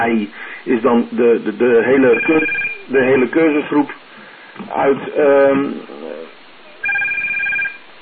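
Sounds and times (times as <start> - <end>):
speech: 0.1 - 4.0, 4.7 - 5.9
telephone ringing: 2.0 - 2.9, 6.8 - 7.9.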